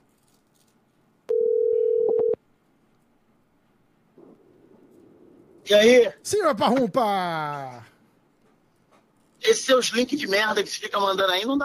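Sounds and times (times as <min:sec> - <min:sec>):
faint noise: 0:00.0 - 0:11.6
telephone dial tone: 0:01.3 - 0:02.4
speech: 0:05.7 - 0:07.9, 0:09.4 - 0:11.6.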